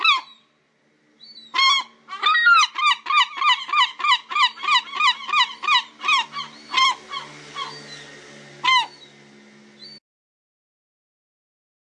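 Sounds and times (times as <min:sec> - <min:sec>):
European herring gull calls: 0:00.0 - 0:00.5, 0:01.3 - 0:09.1.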